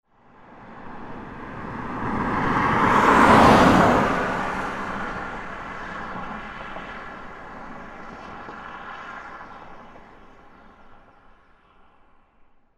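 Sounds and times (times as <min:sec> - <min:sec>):
passing car: 0:00.2 - 0:12.2.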